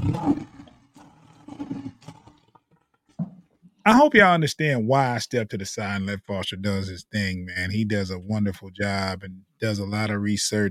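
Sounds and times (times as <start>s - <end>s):
lion roaring: 0.0s - 2.4s
speech: 3.9s - 10.6s.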